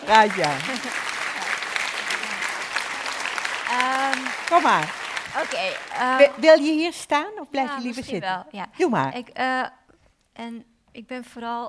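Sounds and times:
audience applause: 0.0s - 6.5s
speech: 0.1s - 0.7s, 4.5s - 9.8s, 10.4s - 11.6s.

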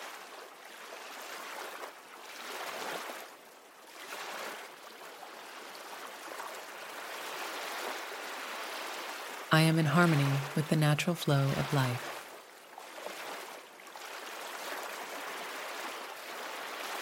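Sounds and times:
gentle ocean waves lapping: 0.0s - 16.9s
speech: 9.5s - 12.1s.

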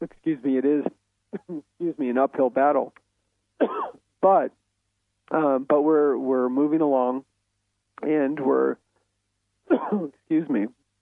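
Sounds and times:
speech: 0.3s - 1.0s, 2.2s - 3.0s, 4.2s - 4.6s, 5.3s - 7.3s, 8.0s - 8.8s, 9.8s - 10.8s
person coughing: 1.4s - 1.6s, 3.6s - 4.0s, 9.7s - 10.2s.

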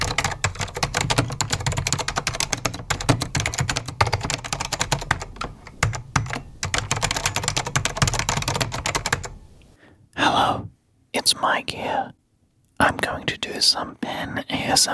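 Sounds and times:
typing on an Apple Extended II mechanical keyboard: 0.0s - 9.4s
speech: 11.3s - 12.2s, 12.8s - 14.9s.

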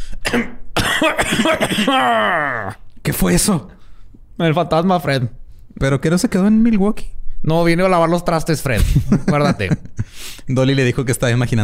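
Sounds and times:
man clearing his throat: 0.2s - 2.8s
speech: 0.3s - 3.8s, 4.4s - 11.6s
laughter: 8.8s - 10.1s.

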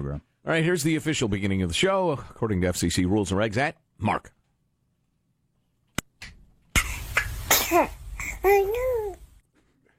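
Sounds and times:
speech: 0.0s - 4.4s, 7.7s - 9.2s
baby sneezing: 6.7s - 8.8s
baby babbling: 7.6s - 9.4s.

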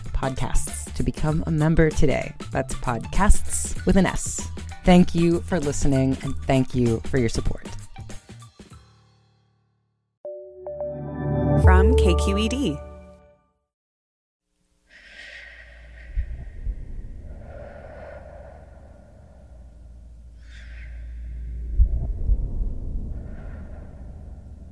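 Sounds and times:
speech: 0.2s - 7.7s, 12.1s - 12.9s
slow breathing in and out: 14.8s - 24.7s.

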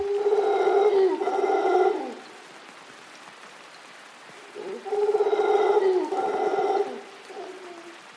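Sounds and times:
large mostly black monkeys with golden fringe roaring: 0.0s - 2.2s, 4.6s - 7.9s
low steady hiss: 0.0s - 8.1s.

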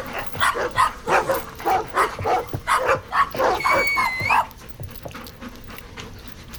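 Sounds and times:
dogs barking rapidly: 0.0s - 4.6s
dogs panting: 0.0s - 6.5s.

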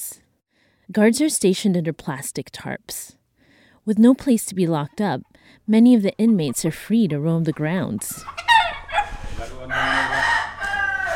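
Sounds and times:
speech: 0.9s - 3.2s, 3.9s - 8.5s
rooster crowing: 8.2s - 11.1s.

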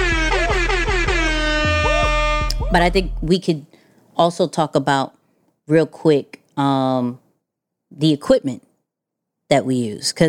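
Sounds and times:
air horn blasts: 0.0s - 3.1s
speech: 2.7s - 7.2s, 7.9s - 8.6s, 9.5s - 10.2s.

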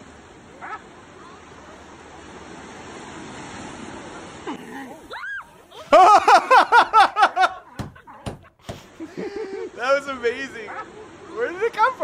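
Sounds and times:
steady ocean surf washing: 0.0s - 12.0s
sea lion harsh barks: 0.5s - 1.5s, 4.4s - 9.0s, 10.4s - 11.4s
laughter: 5.6s - 12.0s.

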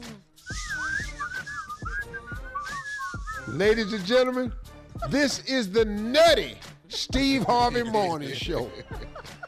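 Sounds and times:
person whistling a wavering sliding tune: 0.0s - 4.1s
thumping music beat with low kicks: 0.0s - 9.4s
speech: 3.5s - 9.0s
laughter: 5.0s - 5.5s, 6.9s - 9.4s.

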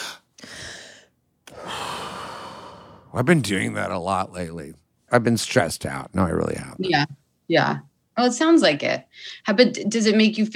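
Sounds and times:
person breathing deeply: 0.0s - 3.2s
speech: 3.1s - 10.5s.

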